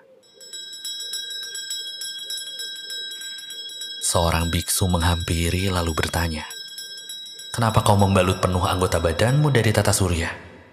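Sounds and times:
Buddhist temple bell ringing: 0.2s - 10.5s
speech: 4.1s - 6.6s, 7.6s - 10.5s.

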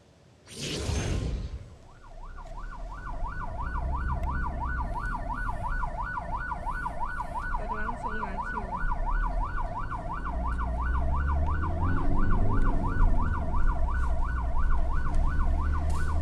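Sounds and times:
engine and traffic rumble of a convoy in Grobogan Central Java: 1.2s - 16.2s
ambulance siren warbling: 1.8s - 16.2s.

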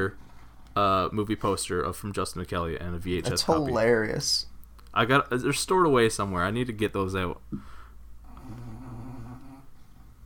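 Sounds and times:
speech: 0.0s - 0.2s, 0.8s - 7.8s
female dog snoring loudly: 8.3s - 9.6s.

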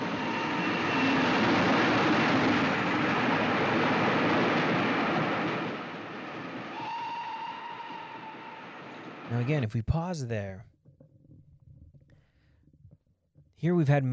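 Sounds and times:
train rumbling past: 0.0s - 9.4s
speech: 9.4s - 10.7s, 13.6s - 14.1s.

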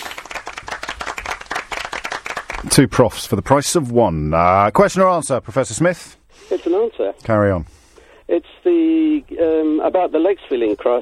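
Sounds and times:
small group applauding: 0.0s - 3.0s
speech: 2.6s - 11.0s.

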